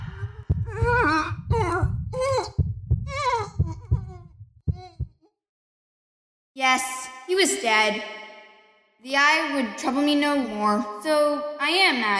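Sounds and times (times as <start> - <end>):
heart beating: 0.0 - 5.3
speech: 6.6 - 8.2, 9.0 - 12.1.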